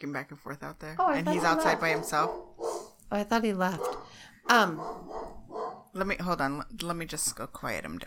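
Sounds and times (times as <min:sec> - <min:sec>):
speech: 0:00.0 - 0:05.3, 0:06.0 - 0:08.0
dog barking: 0:01.3 - 0:03.0, 0:03.8 - 0:05.9.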